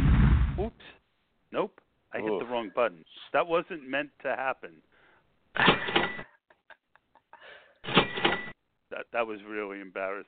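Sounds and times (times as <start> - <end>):
speech: 0.7 - 4.9, 5.6 - 6.1, 9.0 - 10.2
cash register sound effect: 5.6 - 6.3, 7.8 - 8.6.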